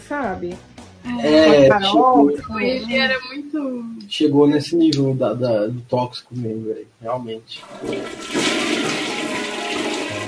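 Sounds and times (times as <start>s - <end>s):
speech: 0.1s - 9.0s
toilet flushing: 7.6s - 10.2s.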